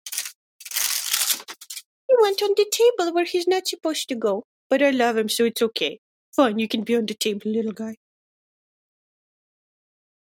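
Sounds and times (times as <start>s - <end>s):
parchment paper crinkling and rustling as a pet plays: 0.0s - 1.9s
speech: 2.2s - 8.0s.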